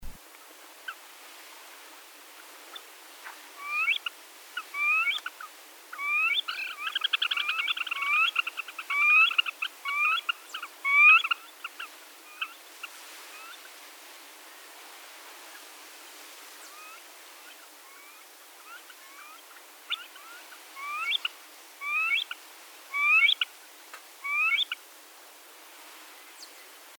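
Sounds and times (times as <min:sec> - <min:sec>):
black-necked grebe calling: 0:03.6 - 0:12.6, 0:17.9 - 0:23.4, 0:24.2 - 0:24.8.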